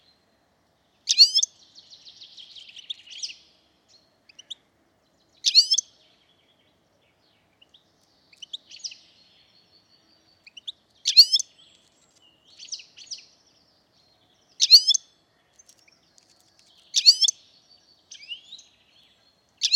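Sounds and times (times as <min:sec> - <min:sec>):
European goldfinch Carduelis carduelis calls: 0:01.1 - 0:01.5, 0:05.4 - 0:05.8, 0:10.4 - 0:11.5, 0:14.6 - 0:15.0, 0:15.7 - 0:17.4.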